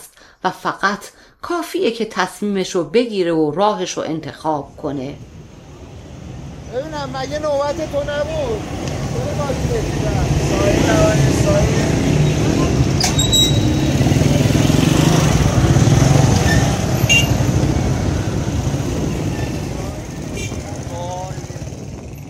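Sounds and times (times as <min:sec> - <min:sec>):
speech: 0:00.4 - 0:05.4, 0:06.7 - 0:11.8
car engine roaring as the car accelerates through an intersection: 0:05.2 - 0:22.2.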